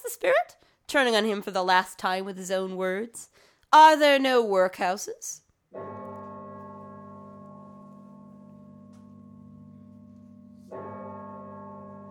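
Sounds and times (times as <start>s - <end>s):
speech: 0.1s - 6.0s
deep church bell tolling: 5.7s - 12.0s.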